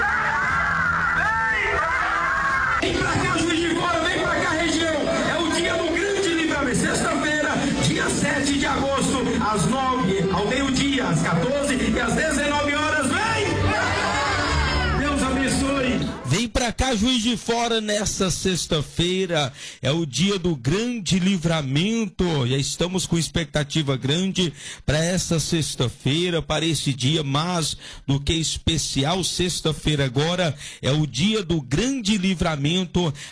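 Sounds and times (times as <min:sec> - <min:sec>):
whoops from the crowd: 0:00.0 - 0:02.8, 0:13.7 - 0:15.0
large crowd chattering, shouting and cheering at the state headquarters: 0:00.0 - 0:16.6
speech: 0:16.8 - 0:33.2.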